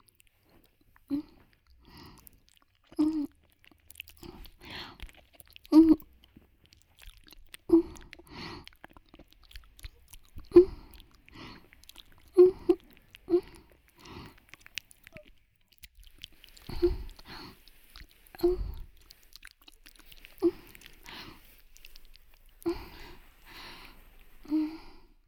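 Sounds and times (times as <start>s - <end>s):
wet chewing of food during mouth-feeding: 0.0s - 25.2s.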